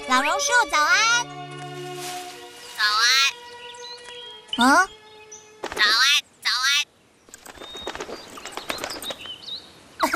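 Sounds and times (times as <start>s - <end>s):
speech: 0.1s - 1.6s, 4.6s - 5.0s, 5.8s - 6.2s
myna bird calling: 2.6s - 10.0s.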